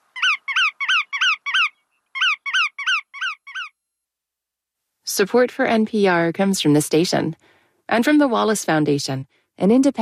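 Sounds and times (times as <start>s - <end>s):
bar-tailed godwit calling sharp nasal notes: 0.0s - 3.8s
speech: 5.2s - 10.0s.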